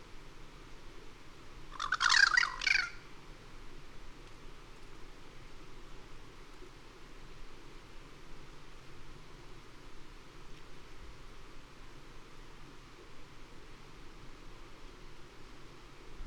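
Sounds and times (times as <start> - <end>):
low background noise: 0.0 - 16.2
Cuban crow harsh scratchy chattering: 1.8 - 3.0.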